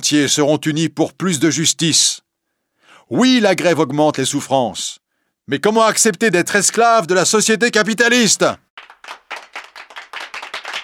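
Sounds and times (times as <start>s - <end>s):
speech: 0.0s - 2.2s, 3.1s - 9.2s
applause after a speech at a striking workers' meeting: 8.8s - 10.8s.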